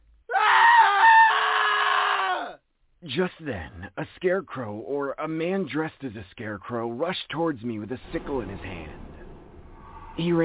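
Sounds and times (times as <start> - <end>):
person screaming in fright: 0.3 - 2.6
speech: 3.1 - 9.1, 10.2 - 10.4.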